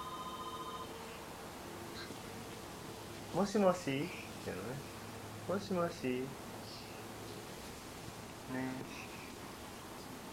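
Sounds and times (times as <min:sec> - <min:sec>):
telephone giving a steady electronic buzz: 0:00.0 - 0:01.2
speech: 0:03.3 - 0:06.4, 0:08.5 - 0:09.1.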